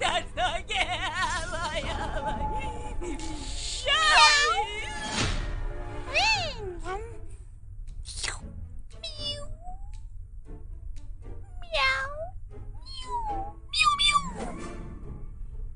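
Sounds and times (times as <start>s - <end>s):
laughter: 0.0s - 4.8s
faint low hum: 0.0s - 15.7s
cat meowing: 9.0s - 10.0s, 11.5s - 14.5s.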